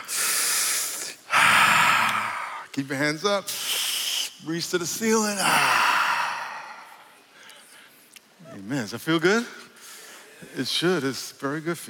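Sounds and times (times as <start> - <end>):
group of people drawing a deep breath in together: 0.0 - 2.7, 5.4 - 8.1
speech: 2.8 - 3.6, 4.4 - 5.8, 8.6 - 9.6, 10.4 - 11.8.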